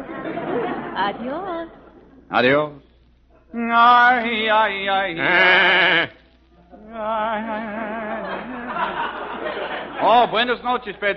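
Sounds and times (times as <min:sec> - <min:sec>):
laughter: 0:00.0 - 0:02.3, 0:07.6 - 0:11.1
speech: 0:01.0 - 0:02.8, 0:03.5 - 0:06.2, 0:06.9 - 0:08.0, 0:10.0 - 0:11.1
sheep bleating: 0:05.1 - 0:06.2.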